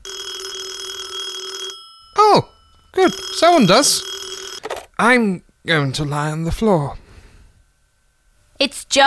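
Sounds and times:
telephone ringing with a steady electronic tone: 0.0 - 4.9
speech: 3.1 - 4.2, 5.0 - 7.0, 8.6 - 9.0.

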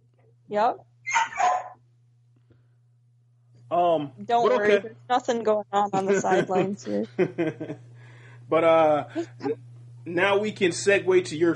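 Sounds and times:
faint low electrical hum: 0.0 - 11.5
speech: 0.5 - 0.9, 3.7 - 7.9, 8.5 - 11.5
dog giving a sharp bark: 1.1 - 1.8
laughter: 3.8 - 4.9, 5.8 - 7.8, 8.5 - 11.5.

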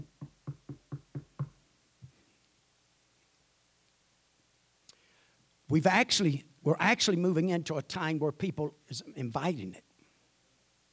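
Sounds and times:
firm knocks on a door: 0.0 - 1.6
speech: 5.7 - 9.8.

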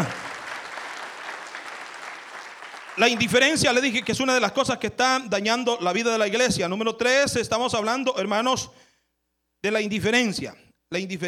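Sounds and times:
crowd applauding: 0.0 - 4.8
speech: 3.0 - 8.9, 9.6 - 11.2.

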